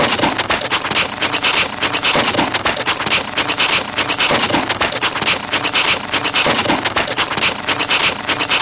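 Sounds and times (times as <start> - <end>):
vintage jalopy motor running: 0.0 - 8.5.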